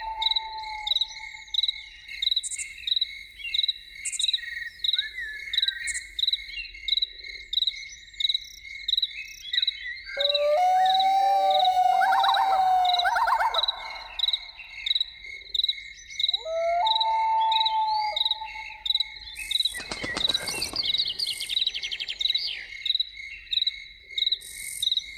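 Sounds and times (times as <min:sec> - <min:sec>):
loon wailing and yodeling in the evening: 0:00.0 - 0:01.5, 0:10.2 - 0:14.6, 0:16.4 - 0:19.2
chorus of crickets chirping in the evening: 0:00.0 - 0:25.1.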